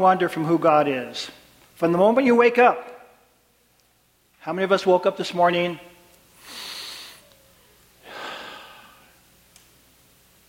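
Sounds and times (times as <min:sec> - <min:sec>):
speech: 0:00.0 - 0:02.9, 0:04.4 - 0:05.9
deep breath: 0:06.4 - 0:09.2.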